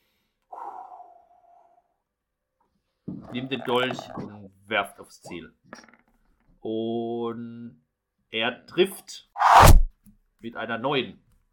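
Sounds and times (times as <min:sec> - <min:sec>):
man's deep breath in and out before throwing a dagger: 0:00.0 - 0:01.8
speech: 0:03.2 - 0:06.0, 0:06.6 - 0:09.8, 0:10.4 - 0:11.2.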